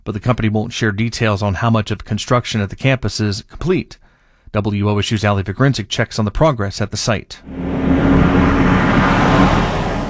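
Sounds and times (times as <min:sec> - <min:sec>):
speech: 0:00.1 - 0:09.8
heavy trucks hauling construction materials rumbling along rural roads: 0:07.5 - 0:10.0.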